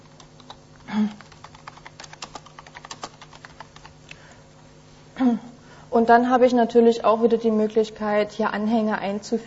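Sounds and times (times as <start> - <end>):
typing an email subject on a computer keyboard: 0.0 - 4.0
speech: 6.0 - 9.4.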